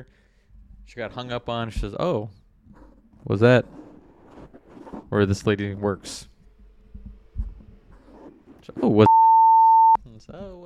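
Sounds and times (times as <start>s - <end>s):
speech: 0.0s - 0.2s, 0.9s - 3.8s, 5.1s - 6.3s, 8.7s - 9.1s, 10.2s - 10.6s
censor bleep: 9.0s - 10.0s.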